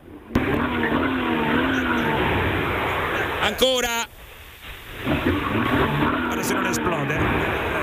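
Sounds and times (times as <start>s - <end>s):
car engine revving as the throttle is pressed: 0.3s - 3.6s, 5.0s - 7.8s
speech: 3.4s - 4.1s, 6.4s - 7.8s.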